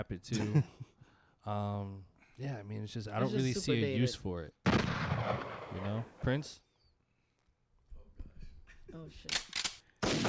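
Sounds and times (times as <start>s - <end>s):
speech: 0.0s - 0.8s, 1.4s - 6.7s, 8.9s - 9.5s
gunshots: 4.6s - 6.3s, 9.6s - 10.2s
loud sustained blast of fire: 4.6s - 6.3s.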